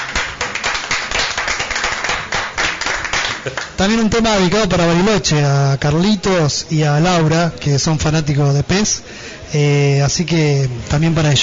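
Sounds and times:
audience applause after a live band performance: 0.0 - 3.8
speech: 3.4 - 11.4.

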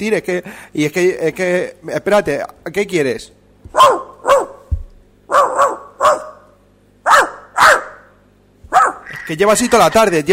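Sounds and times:
speech: 0.0 - 4.0, 9.3 - 10.3
dog barking: 3.7 - 4.7, 5.3 - 8.1, 8.7 - 9.3
dull thump: 4.6 - 5.1.

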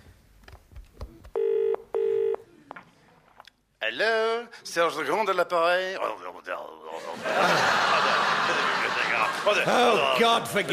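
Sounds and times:
faint room noise: 0.0 - 10.0
phone ringing tones: 1.4 - 2.4
speech: 3.9 - 7.8, 9.3 - 10.7
laughter: 6.9 - 10.7.

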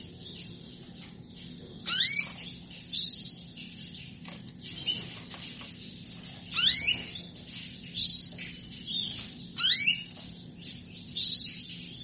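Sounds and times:
female canary calling to mate with upward-sweeping chirps and buzzy notes: 0.0 - 12.0.

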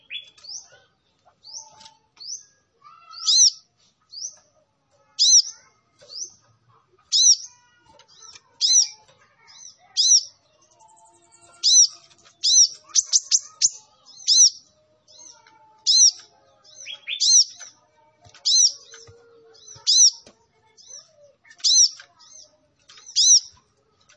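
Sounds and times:
sunbird singing energetically: 1.4 - 4.5, 7.1 - 17.8, 18.4 - 20.2, 20.8 - 23.6.

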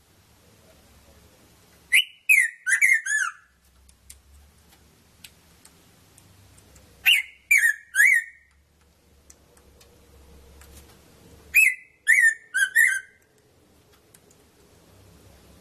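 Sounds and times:
soft background hum: 0.0 - 15.5
red-throated parrotfinch Erythrura psittacea chirping: 1.9 - 3.6, 7.0 - 8.6, 11.5 - 13.2.

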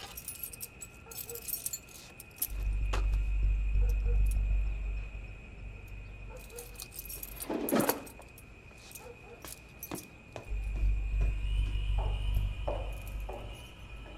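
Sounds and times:
bunch of keys jangling: 0.0 - 2.7, 6.3 - 10.2
low rumble: 2.5 - 6.3, 10.5 - 14.1.

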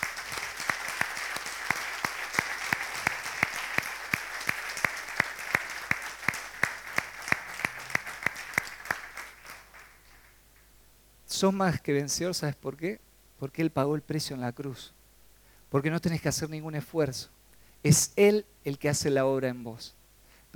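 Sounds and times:
church congregation applauding: 0.0 - 10.4
speech: 11.4 - 15.0, 15.7 - 20.5.

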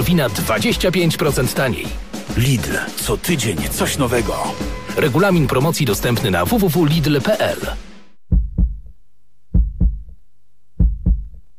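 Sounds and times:
speech: 0.1 - 7.8
human heart beating in a steady lub-dub rhythm: 8.3 - 8.9, 9.5 - 10.2, 10.8 - 11.5.

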